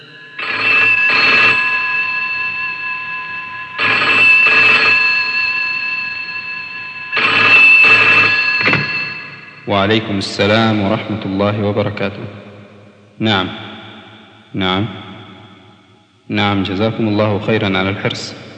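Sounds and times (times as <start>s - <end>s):
telephone ringing on an outgoing call: 0.0s - 10.2s
speech: 9.8s - 12.5s, 13.2s - 13.7s, 14.5s - 15.0s, 16.3s - 18.5s.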